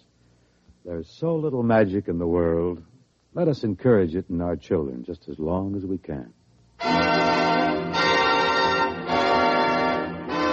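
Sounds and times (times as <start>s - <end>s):
speech: 0.8s - 7.0s
Christmas bells ringing: 6.8s - 10.5s.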